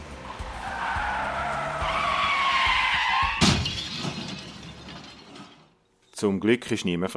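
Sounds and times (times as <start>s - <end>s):
car tires screeching in a long skid: 0.0s - 3.6s
crash between two cars with shattering impact: 0.5s - 5.8s
speech: 6.2s - 7.1s.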